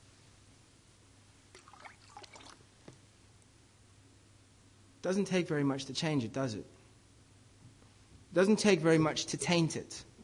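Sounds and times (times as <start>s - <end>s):
squash poured into a clear jug of water: 1.5s - 2.7s
speech: 5.0s - 6.8s, 8.4s - 10.1s.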